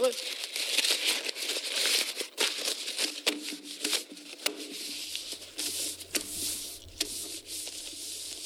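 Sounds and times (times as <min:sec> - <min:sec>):
paper rustling and crinkling: 0:00.0 - 0:08.4
speech: 0:00.1 - 0:00.4.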